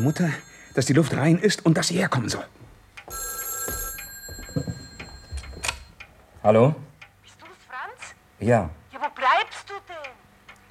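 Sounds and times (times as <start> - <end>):
old-style telephone bell ringing: 0.0 - 1.2, 3.1 - 5.9
speech: 0.0 - 3.2, 6.4 - 6.9, 8.4 - 8.8
soft knocks and clicks: 2.6 - 6.1.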